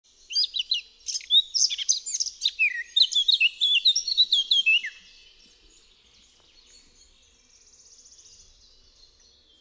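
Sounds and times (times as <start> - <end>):
Eurasian blackcap song: 0.1 - 9.6.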